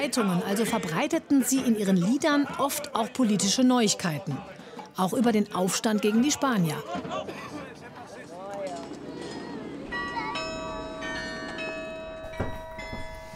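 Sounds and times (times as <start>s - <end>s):
speech: 0.0s - 7.6s
murmur of voices and crowd noise: 0.0s - 11.9s
carillon bells ringing in a bell tower: 9.9s - 13.3s.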